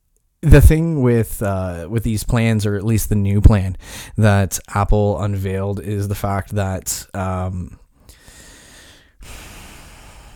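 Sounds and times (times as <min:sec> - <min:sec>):
speech: 0:00.4 - 0:07.8
person taking a deep breath: 0:03.8 - 0:04.2, 0:08.0 - 0:10.3.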